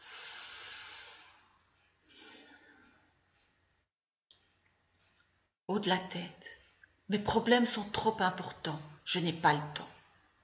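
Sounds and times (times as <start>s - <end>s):
deep breath with long airy inhale and softer exhale: 0.0s - 3.2s
speech: 5.7s - 9.9s.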